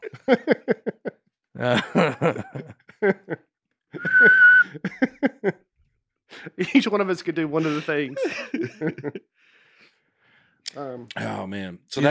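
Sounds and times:
snickering laughter: 0.0s - 3.4s, 4.0s - 5.6s, 7.6s - 9.2s
speech: 0.3s - 0.7s, 1.6s - 2.4s, 6.9s - 9.3s, 11.5s - 12.0s
person whistling a steady note: 4.0s - 4.7s.

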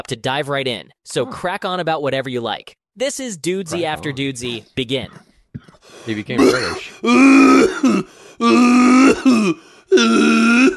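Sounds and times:
speech: 0.1s - 10.7s
person making exaggerated theatrical throat-clearing sounds: 6.4s - 10.7s.

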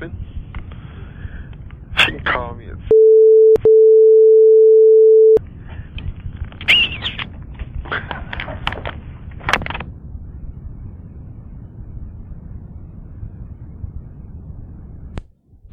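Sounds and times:
speech: 0.0s - 0.3s
telephone tone: 2.9s - 5.4s.

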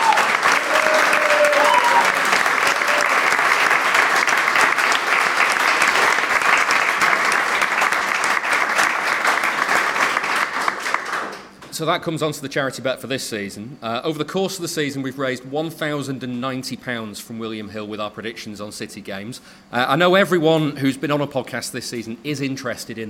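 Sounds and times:
cheer or whistle: 0.0s - 3.2s
audience applause: 0.0s - 11.5s
speech: 11.8s - 23.0s.

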